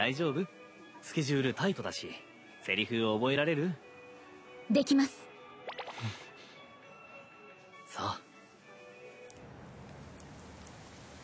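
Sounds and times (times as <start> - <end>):
speech: 0.0 - 3.9, 4.7 - 5.2, 6.0 - 6.2, 7.9 - 8.2
faint scattered drips: 9.2 - 11.2
steady heavy rain: 9.3 - 11.2.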